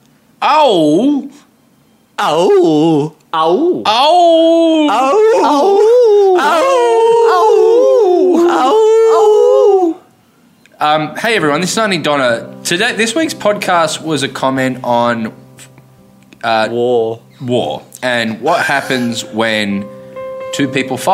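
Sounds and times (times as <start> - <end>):
speech: 0.4 - 1.4, 2.2 - 6.9, 10.8 - 15.4, 16.4 - 20.0, 20.6 - 21.1
dog howling: 4.1 - 10.1.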